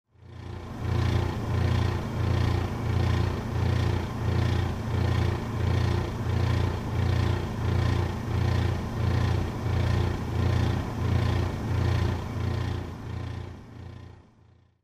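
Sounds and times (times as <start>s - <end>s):
air conditioner: 0.2s - 14.7s.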